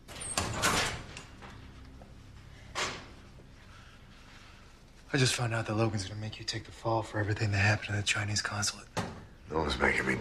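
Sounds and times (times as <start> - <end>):
locker door quietly opening: 0.0 - 1.8
speech: 5.1 - 10.1.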